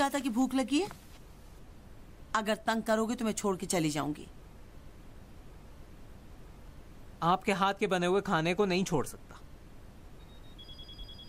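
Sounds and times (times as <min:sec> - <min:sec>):
speech: 0:00.0 - 0:01.1, 0:02.3 - 0:04.4, 0:07.2 - 0:09.4
low hum: 0:00.0 - 0:11.2
telephone ringing with a thin high-pitched electronic tone: 0:10.2 - 0:11.2.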